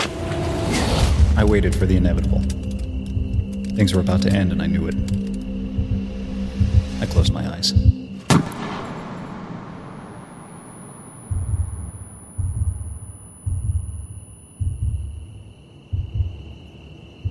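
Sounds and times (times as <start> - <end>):
low throbbing thuds: 0.2 - 17.2
speech: 1.4 - 2.7, 3.8 - 5.3, 7.0 - 8.5
gunshot: 8.2 - 9.4.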